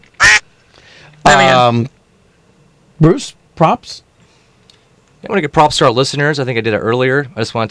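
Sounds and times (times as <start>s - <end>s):
duck quacking: 0.2s - 0.4s
speech: 1.3s - 2.0s, 3.0s - 4.1s, 5.2s - 7.6s.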